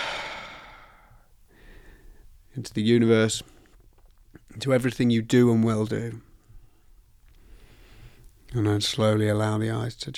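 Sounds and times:
deep exhale after a held breath during a guided meditation: 0.0s - 2.0s
speech: 2.6s - 3.6s, 4.6s - 6.3s, 8.5s - 10.1s.

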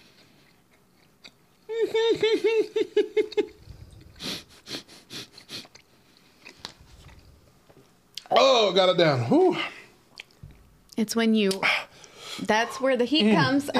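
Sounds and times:
person chewing food noisily: 0.0s - 8.3s, 10.1s - 12.2s
person humming and groaning: 1.7s - 2.6s
speech: 1.9s - 3.4s, 8.6s - 9.8s, 11.0s - 11.8s, 12.5s - 13.7s.

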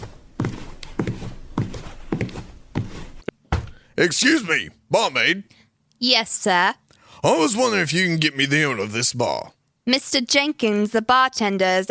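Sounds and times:
heavy footsteps walking into a bar: 0.0s - 3.9s
speech: 4.0s - 11.8s.

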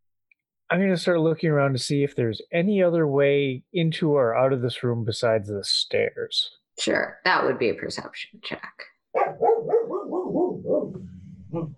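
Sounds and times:
speech: 0.7s - 9.4s, 11.5s - 11.7s
dog barking: 9.1s - 11.7s.

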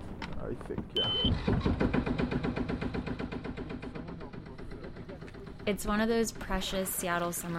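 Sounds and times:
speech: 0.5s - 2.1s, 5.6s - 7.5s
small inboard sailboat engine chugging: 1.3s - 7.5s.

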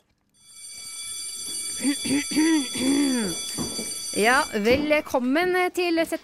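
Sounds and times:
electric school bell ringing for the start of class: 0.4s - 5.0s
speech: 1.8s - 3.6s, 4.2s - 6.2s.

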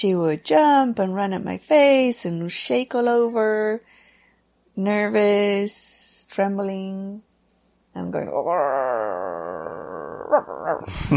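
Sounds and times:
speech: 0.0s - 3.9s, 4.8s - 7.3s, 8.0s - 11.1s
small female dog growling: 8.3s - 10.9s.

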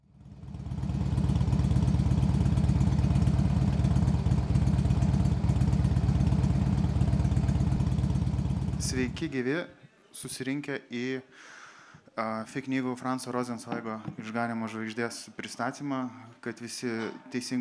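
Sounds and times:
Harley-Davidson motorcycle engine idling: 0.0s - 9.3s
speech: 9.0s - 11.6s, 12.2s - 17.5s.

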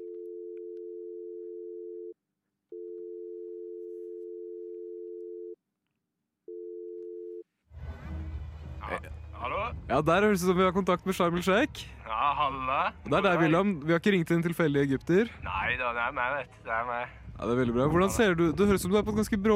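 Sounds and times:
telephone line tone dialled from a mixing desk: 0.0s - 5.6s, 6.5s - 7.4s
speech: 9.9s - 19.5s.

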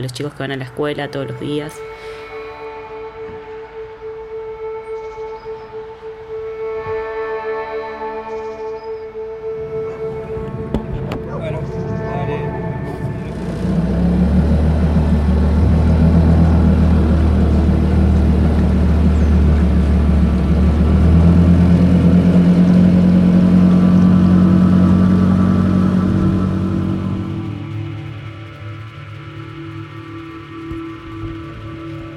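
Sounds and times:
speech: 0.0s - 2.2s
small motorboat engine droning with throttle changes: 0.0s - 32.1s.

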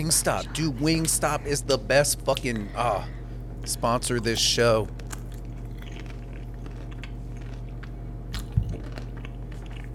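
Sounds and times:
speech: 0.0s - 5.0s
low hum: 0.0s - 9.9s
chewing crunchy food: 3.6s - 9.9s.

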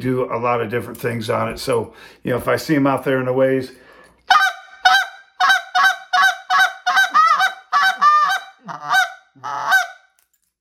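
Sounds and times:
speech: 0.0s - 4.4s
handheld goose call blown to imitate high-pitched goose honks: 4.3s - 10.0s.

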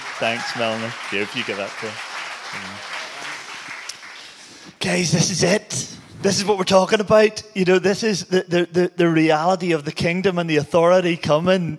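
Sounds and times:
crowd applause filling the room: 0.0s - 4.6s
speech: 0.2s - 2.9s, 4.8s - 11.7s.

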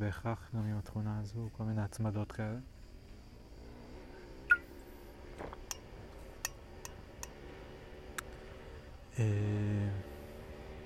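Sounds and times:
speech: 0.0s - 2.8s, 9.2s - 10.1s
faint rumble: 0.0s - 10.8s
motorcycle engine droning uphill: 2.6s - 10.8s.

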